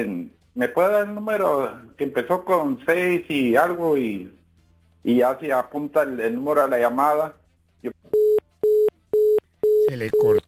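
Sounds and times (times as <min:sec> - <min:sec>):
speech: 0:00.0 - 0:04.4, 0:05.0 - 0:08.0, 0:10.0 - 0:10.4
telephone busy tone beeps after a dropped call: 0:08.2 - 0:10.4.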